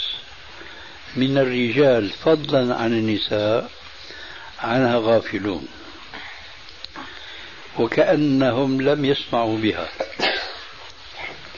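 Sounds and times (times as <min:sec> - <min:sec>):
quiet breathing: 0:00.4 - 0:01.2, 0:03.8 - 0:04.6, 0:05.6 - 0:07.8
speech: 0:01.2 - 0:03.8, 0:04.6 - 0:05.8, 0:07.8 - 0:10.0
person sneezing: 0:10.0 - 0:11.4.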